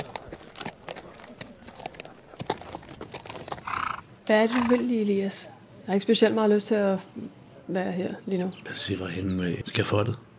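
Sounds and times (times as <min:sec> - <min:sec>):
horse hooves clip-clopping at a walking pace: 0:00.0 - 0:04.2
speech: 0:04.3 - 0:10.2.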